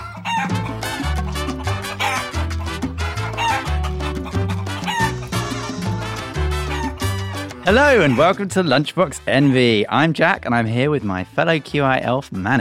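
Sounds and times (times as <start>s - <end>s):
rooster crowing: 0.0s - 2.3s, 3.1s - 8.2s
upbeat music with bass line and driving percussion: 0.0s - 12.6s
speech: 7.7s - 12.6s.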